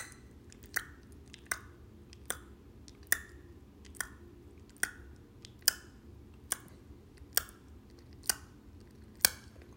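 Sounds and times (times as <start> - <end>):
faint low hum: 0.0 - 9.7
tongue clicks against the upper gum during a breathing exercise: 0.0 - 9.7.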